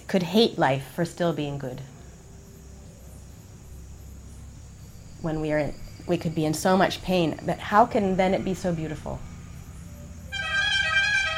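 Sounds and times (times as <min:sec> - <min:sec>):
speech: 0:00.1 - 0:01.9, 0:05.2 - 0:09.3
truck rumbling: 0:01.6 - 0:11.3
sustained truck horn blast: 0:10.3 - 0:11.3.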